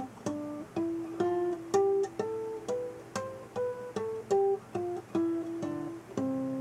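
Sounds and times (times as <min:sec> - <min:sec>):
artificial harmonics plucked on a string instrument: 0:00.0 - 0:06.5.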